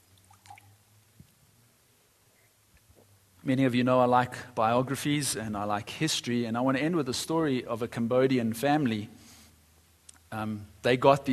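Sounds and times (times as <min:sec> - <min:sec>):
water pouring into a glass: 0:00.0 - 0:00.8
soft drips: 0:00.0 - 0:01.6
low hum: 0:00.0 - 0:11.3
speech: 0:03.4 - 0:09.2, 0:10.3 - 0:11.3.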